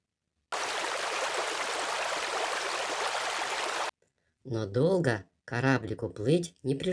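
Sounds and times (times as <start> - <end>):
stream water flowing: 0.5 - 3.9
speech: 4.4 - 6.9.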